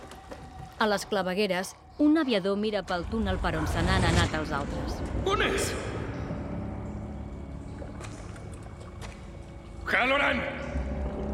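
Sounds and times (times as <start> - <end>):
speech: 0.8 - 5.9, 9.9 - 10.6
water sloshing and splashing in a bathtub as a man heaves up out of it: 6.3 - 11.3.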